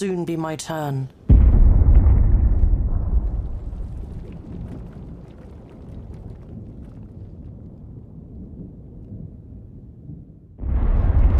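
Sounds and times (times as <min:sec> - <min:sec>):
speech: 0:00.0 - 0:01.2
artillery shells exploding over a city under bombardment: 0:01.3 - 0:07.2, 0:10.6 - 0:11.3.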